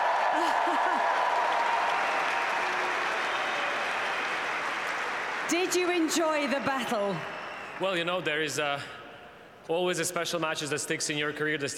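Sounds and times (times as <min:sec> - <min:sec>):
large tennis crowd applauding: 0:00.0 - 0:08.3
speech: 0:05.5 - 0:09.0, 0:09.6 - 0:11.7.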